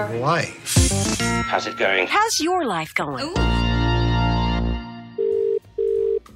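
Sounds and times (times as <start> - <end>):
speech: 0.0 - 3.8
telephone ringing tone after a number is dialled: 5.2 - 6.2.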